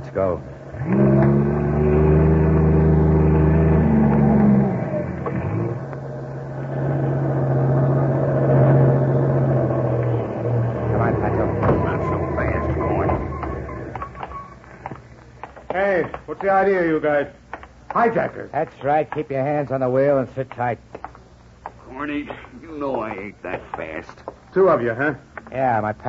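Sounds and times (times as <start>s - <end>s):
speech: 0.2s - 1.6s, 16.4s - 17.4s, 18.0s - 20.9s, 22.1s - 26.0s
heavy trailer truck engine roaring up steep highway at night: 0.6s - 14.8s.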